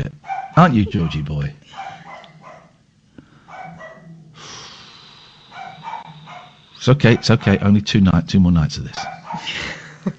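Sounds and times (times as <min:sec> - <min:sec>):
steady hiss: 0:00.0 - 0:10.1
female dog barking: 0:00.2 - 0:02.8, 0:03.4 - 0:04.2, 0:05.5 - 0:07.8, 0:08.9 - 0:09.5
laughter: 0:00.6 - 0:01.2, 0:09.3 - 0:10.1
speech: 0:00.6 - 0:01.9, 0:06.8 - 0:10.1
dog snuffly breathing: 0:03.2 - 0:06.9.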